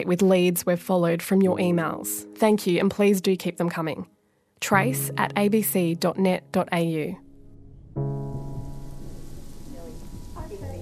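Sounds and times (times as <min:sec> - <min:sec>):
speech: 0:00.0 - 0:07.2, 0:08.0 - 0:08.2
steady rain at night: 0:08.3 - 0:10.7.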